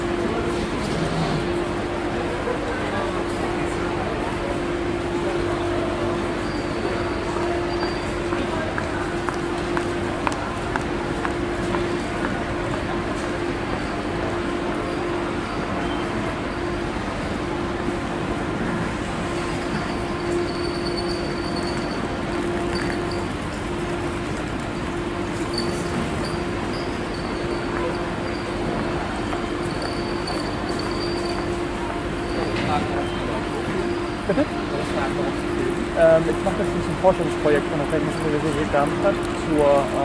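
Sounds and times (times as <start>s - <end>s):
ICE train arriving with steady low hum: 0.0s - 40.0s
indistinct crowd murmur on railway platform: 0.0s - 40.0s
footsteps of people leaving the railway platform: 7.4s - 13.6s, 19.1s - 40.0s
speech: 36.2s - 40.0s.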